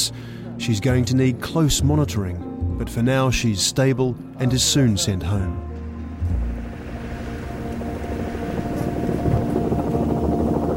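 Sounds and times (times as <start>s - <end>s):
speech: 0.0s - 5.7s
helicopter flying overhead with rotor rumble: 6.2s - 10.7s.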